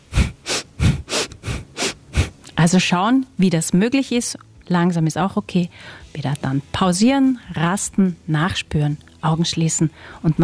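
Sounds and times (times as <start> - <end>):
fast rhythmic breathing of a breathing exercise: 0.0 - 2.5
speech: 2.6 - 10.4.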